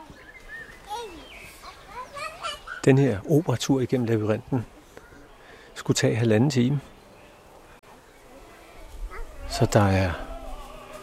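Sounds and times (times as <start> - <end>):
birds chirping: 0.0 - 11.0
speech: 2.8 - 4.8, 5.8 - 6.9, 9.6 - 10.2.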